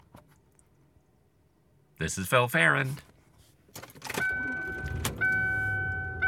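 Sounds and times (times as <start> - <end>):
speech: 2.0 - 3.1
car driving on the road, low steady rumble inside the vehicle: 4.2 - 6.2.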